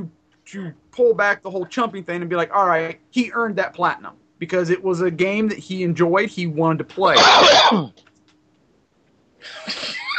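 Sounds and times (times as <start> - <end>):
speech: 0.0 - 8.1
sharp explosive cough: 7.2 - 7.9.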